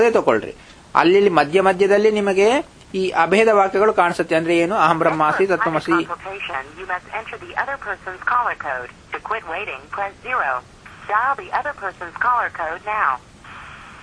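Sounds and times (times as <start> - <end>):
speech: 0.0 - 13.3
automated recorded voice message playing over a phone line: 5.4 - 13.2.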